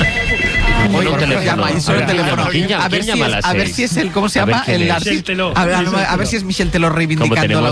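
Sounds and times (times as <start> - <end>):
telephone ringtone trilling: 0.0 - 2.6
speech: 1.0 - 7.6.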